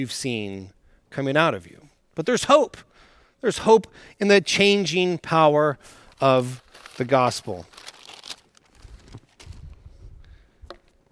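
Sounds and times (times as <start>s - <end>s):
speech: 0.0s - 7.8s
hands wiped with a cloth rag: 5.8s - 8.4s.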